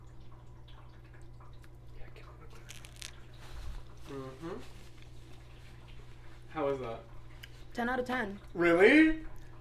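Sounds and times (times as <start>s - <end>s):
soft crunching bites into a chocolate-dipped treat: 2.6s - 3.2s
speech: 6.7s - 7.1s, 7.8s - 9.3s.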